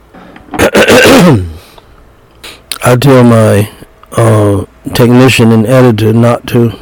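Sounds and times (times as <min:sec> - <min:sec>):
man coughing with a rough throaty tail: 0:00.5 - 0:01.7
speech: 0:01.2 - 0:01.5, 0:02.8 - 0:06.7.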